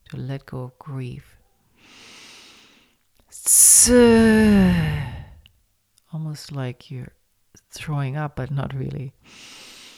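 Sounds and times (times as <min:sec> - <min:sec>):
speech: 0:00.1 - 0:02.0, 0:03.3 - 0:05.1, 0:06.1 - 0:09.6
long hissing exhale in a breathing exercise: 0:03.4 - 0:05.4.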